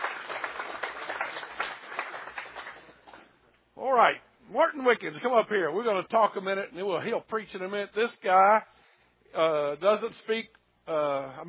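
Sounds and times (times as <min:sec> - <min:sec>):
crowd applauding with many hands clapping: 0:00.0 - 0:03.3
speech: 0:03.9 - 0:11.4.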